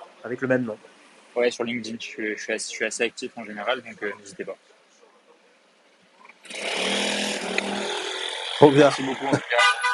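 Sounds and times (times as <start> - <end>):
speech: 0.2 - 4.8, 8.6 - 9.6
loud buzzing car engine roaring with a harsh raspy drone: 6.3 - 9.6.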